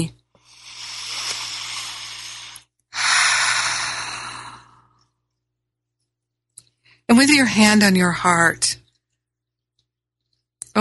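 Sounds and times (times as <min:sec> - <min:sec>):
deep breath during a guided meditation: 0:00.4 - 0:05.1
speech: 0:07.1 - 0:08.8.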